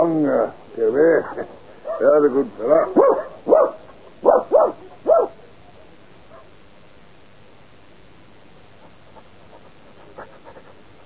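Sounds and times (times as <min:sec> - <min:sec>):
speech: 0:00.0 - 0:03.7
dog barking: 0:01.8 - 0:05.4, 0:06.3 - 0:06.5
dog panting: 0:08.8 - 0:11.0.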